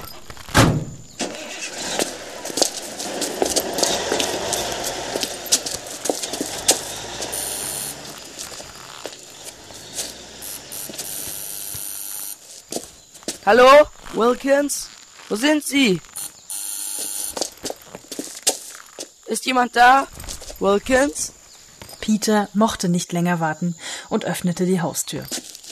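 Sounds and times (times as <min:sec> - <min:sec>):
car starting: 0:00.0 - 0:12.4
rough car engine rumble: 0:01.0 - 0:12.4
speech: 0:13.5 - 0:16.1, 0:19.4 - 0:21.3, 0:22.1 - 0:25.4.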